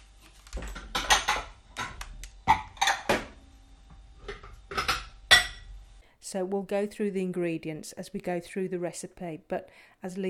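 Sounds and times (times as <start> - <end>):
bowls and dishes clinking in a kitchen: 0.7 - 1.5, 2.5 - 3.3, 4.3 - 5.7
speech: 6.3 - 10.2.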